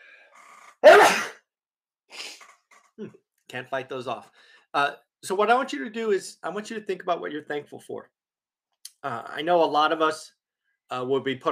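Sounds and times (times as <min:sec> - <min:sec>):
sniff: 0:00.0 - 0:01.4, 0:02.1 - 0:02.7
sneeze: 0:00.8 - 0:01.4
speech: 0:03.0 - 0:08.2, 0:09.0 - 0:11.5.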